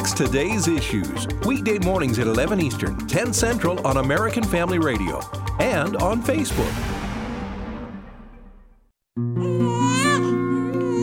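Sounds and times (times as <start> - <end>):
speech: 0.1 - 7.0
crash-like noise: 6.5 - 8.9
newborn baby crying: 9.4 - 11.0.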